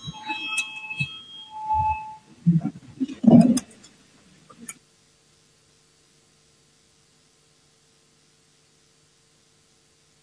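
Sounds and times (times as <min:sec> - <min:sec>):
electronic voting signal beeping in parliament before a vote: 0:00.0 - 0:03.8.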